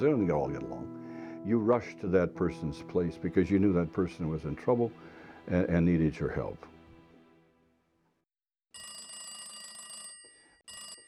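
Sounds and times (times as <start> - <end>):
speech: 0.0 - 6.7
old party-line telephone bell ringing: 8.8 - 11.0.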